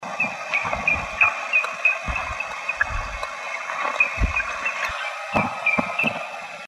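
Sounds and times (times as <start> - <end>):
grey-headed woodpecker: 0.2 - 6.3.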